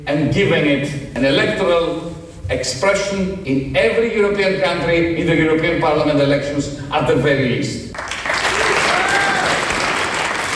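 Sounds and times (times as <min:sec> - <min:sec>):
speech: 0:00.1 - 0:08.0
large audience applauding in a hall: 0:08.0 - 0:10.5.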